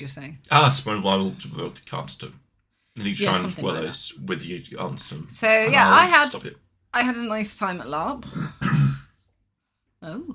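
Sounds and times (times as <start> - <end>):
speech: 0.0 - 2.4, 3.0 - 9.0, 10.0 - 10.3
brief voiced throat-clearing rasp: 8.3 - 9.1
cough turned away from microphone: 8.3 - 9.1.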